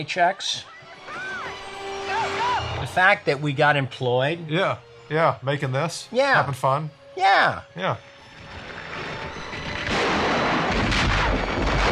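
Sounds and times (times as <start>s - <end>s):
speech: 0.0s - 0.7s, 2.8s - 8.1s
massive explosion of a monster in a creature film: 9.7s - 11.9s.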